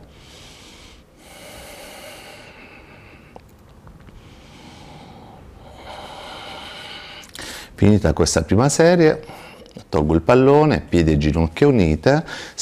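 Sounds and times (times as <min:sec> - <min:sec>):
breathing in and out during a floor exercise with a ball: 0:00.0 - 0:07.8, 0:09.2 - 0:09.8, 0:12.2 - 0:12.6
speech: 0:07.8 - 0:12.6.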